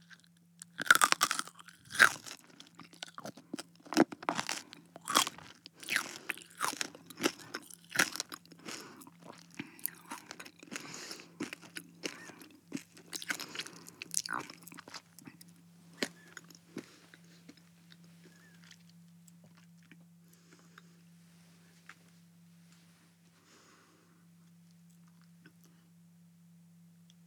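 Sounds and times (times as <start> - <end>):
crisp crunching and chewing: 0.0 - 21.0.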